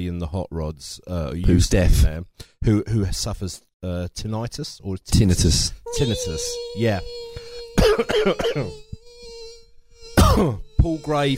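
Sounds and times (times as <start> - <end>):
speech: 0.0 - 9.0, 10.3 - 11.3
mosquito whine: 5.9 - 11.3
person coughing or clearing throat: 7.6 - 8.8, 10.2 - 10.6.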